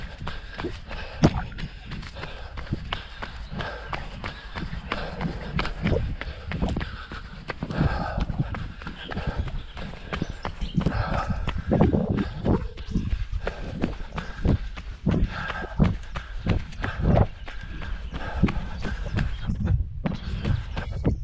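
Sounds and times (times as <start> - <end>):
runner's footfalls on a forest trail: 0.0 - 21.2.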